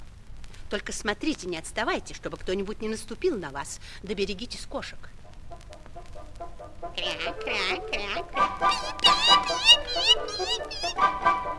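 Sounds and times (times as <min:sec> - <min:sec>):
speech: 0:00.7 - 0:05.2, 0:06.8 - 0:11.5
other fowl calls in a poultry yard: 0:05.3 - 0:11.5
geese honking and squawking in a poultry yard: 0:06.0 - 0:11.5.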